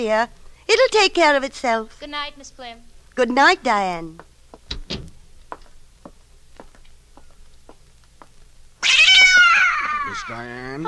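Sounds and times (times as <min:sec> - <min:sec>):
speech: 0:00.0 - 0:04.3, 0:10.1 - 0:10.8
cat meowing: 0:08.8 - 0:10.6.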